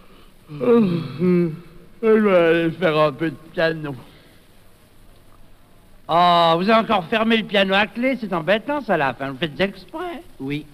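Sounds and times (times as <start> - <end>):
person yawning: 0.5 - 1.8
speech: 0.5 - 4.1, 6.1 - 10.7.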